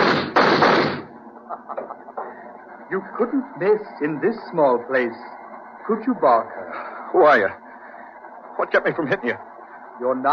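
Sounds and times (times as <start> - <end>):
gunshot sound effect in a radio drama: 0.0 - 1.1
laughter: 1.3 - 3.3, 8.6 - 9.5
speech: 1.6 - 2.2, 2.9 - 7.6, 8.6 - 10.3.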